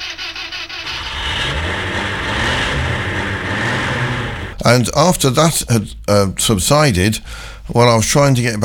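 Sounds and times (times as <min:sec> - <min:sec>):
car engine starting and running: 0:00.0 - 0:04.9
speech: 0:04.6 - 0:08.6.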